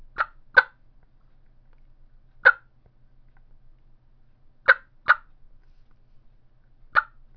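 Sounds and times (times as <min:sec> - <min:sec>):
Rio Grande special turkey mouth call clucks: 0:00.0 - 0:00.8, 0:02.4 - 0:02.7, 0:04.7 - 0:05.3, 0:06.9 - 0:07.3.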